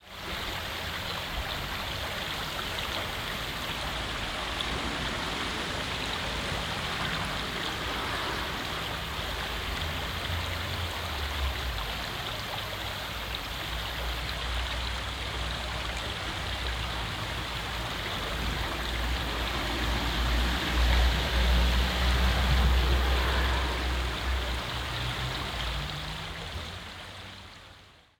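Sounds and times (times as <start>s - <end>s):
small stream flowing on the street: 0.0s - 28.1s.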